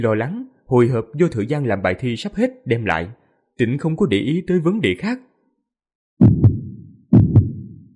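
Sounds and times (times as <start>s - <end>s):
speech: 0.0s - 5.3s
heartbeat sound effect low double thumps: 6.2s - 7.9s.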